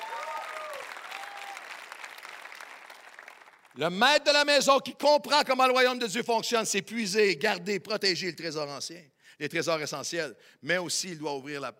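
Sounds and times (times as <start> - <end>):
congregation applause for an ovation at a church service: 0.0 - 4.5
speech: 3.8 - 11.7.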